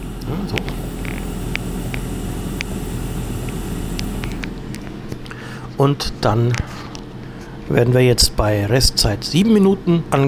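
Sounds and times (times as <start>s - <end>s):
food frying and sizzling in a pan: 0.0s - 4.4s
steady loud appliance motor drone: 0.0s - 5.5s
speech: 5.8s - 6.9s, 7.7s - 10.2s.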